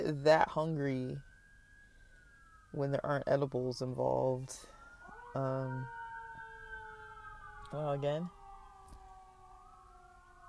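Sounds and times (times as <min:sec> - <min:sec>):
speech: 0:00.0 - 0:01.3, 0:02.7 - 0:06.0, 0:07.7 - 0:08.4
sirens wailing outside: 0:00.0 - 0:10.4.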